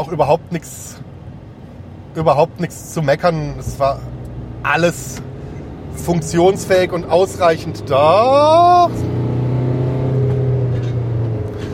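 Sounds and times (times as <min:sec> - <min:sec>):
speech: 0:00.0 - 0:01.1, 0:02.1 - 0:05.3, 0:06.0 - 0:09.2
road rumble: 0:00.0 - 0:11.7
car towing a caravan accelerating to overtake a mowing machine: 0:03.6 - 0:11.7.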